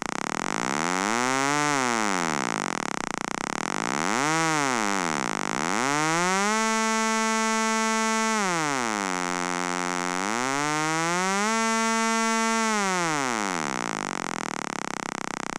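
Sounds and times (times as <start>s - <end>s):
VCO sawtooth oscillator varying frequency: 0.1s - 15.4s.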